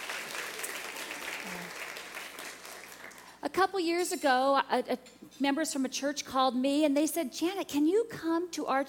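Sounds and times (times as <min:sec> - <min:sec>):
crowd applauding: 0:00.0 - 0:03.4
speech: 0:03.4 - 0:08.8.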